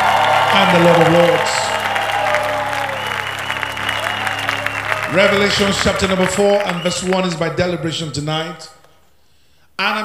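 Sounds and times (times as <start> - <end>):
audience clapping: 0.0 - 7.9
speech: 0.7 - 1.6, 5.1 - 8.8, 9.8 - 10.0.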